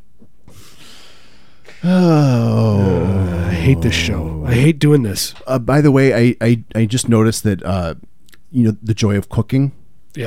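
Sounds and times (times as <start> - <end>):
heavy breath with a snorting edge: 0.5 - 4.6
speech: 1.8 - 2.9, 3.6 - 10.2.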